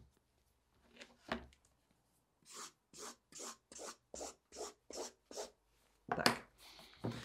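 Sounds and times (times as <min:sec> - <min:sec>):
pen or marker drawing lines on clean paper: 0:02.5 - 0:05.6.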